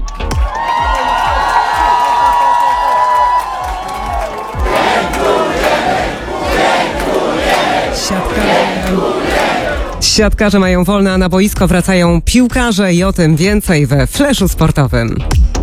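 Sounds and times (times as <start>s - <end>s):
large crowd of fans cheering and shouting at an airport: 0.0s - 10.1s
rhythmic clapping: 0.0s - 10.1s
speech: 10.2s - 15.5s.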